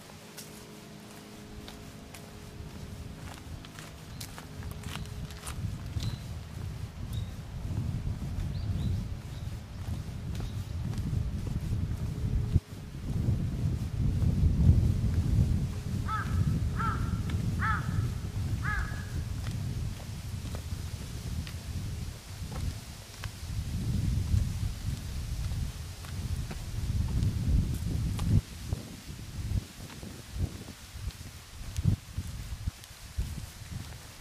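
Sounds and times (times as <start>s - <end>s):
low rumble of wind on an autumn mountainside: 0.0s - 34.1s
rustling and crackles: 0.0s - 34.1s
crow cawing: 16.1s - 18.0s, 18.6s - 19.2s.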